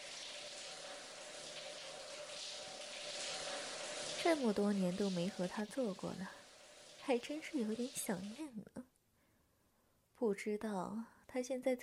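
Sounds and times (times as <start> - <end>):
shower water running in a small home: 0.0 - 8.6
speech: 4.2 - 6.4, 7.1 - 8.8, 10.2 - 11.8.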